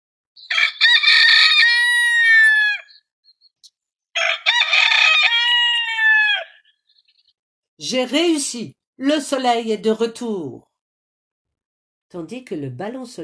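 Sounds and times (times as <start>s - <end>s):
rooster crowing cock-a-doodle-doo: 0.4s - 3.0s, 4.1s - 6.7s
speech: 7.8s - 10.7s, 12.1s - 13.2s.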